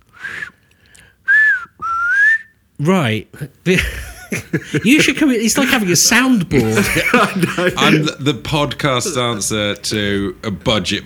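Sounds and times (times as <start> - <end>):
person whistling beep-like phrases imitating a robot: 1.3 - 2.5
speech: 2.8 - 11.0
laughter: 3.7 - 9.9.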